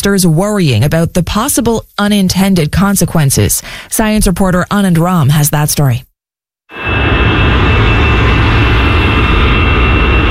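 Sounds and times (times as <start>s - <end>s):
speech: 0.0s - 6.1s
jet engines of airplanes taking off at a large airport: 6.7s - 10.2s.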